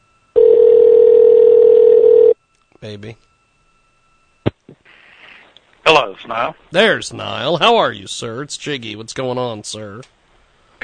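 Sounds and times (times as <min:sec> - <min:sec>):
electronic telephone ringing tone of an outgoing call: 0:00.4 - 0:02.4
speech: 0:02.8 - 0:03.3, 0:06.0 - 0:10.2.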